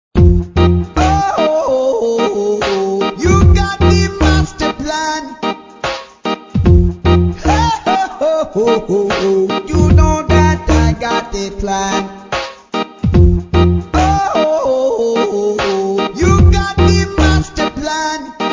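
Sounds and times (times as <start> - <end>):
reggae music: 0.2 - 18.5.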